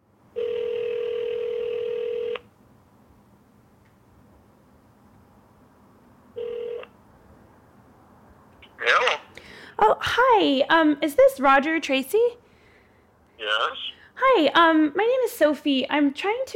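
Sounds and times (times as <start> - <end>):
telephone dial tone: 0.4 - 2.5, 6.4 - 6.9
speech: 10.4 - 12.4, 13.5 - 16.5.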